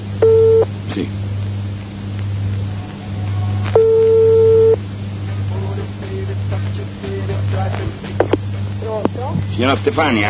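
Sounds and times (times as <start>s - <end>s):
steady low electrical hum: 0.0s - 10.2s
telephone ringback tone: 0.2s - 0.7s, 3.7s - 4.8s
speech: 1.0s - 1.3s, 9.6s - 10.2s.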